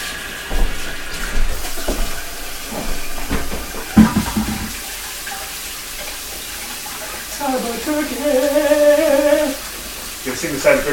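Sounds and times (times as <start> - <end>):
running tap water washing oil-covered hands: 0.0 - 10.9
splashes and knocks: 0.5 - 4.9
speech: 7.5 - 9.0, 10.4 - 10.9.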